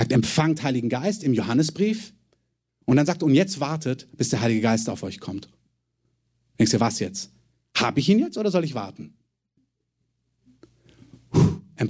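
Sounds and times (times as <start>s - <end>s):
speech: 0.1s - 2.2s, 2.9s - 5.6s, 6.6s - 9.2s
person sneezing: 11.2s - 11.8s.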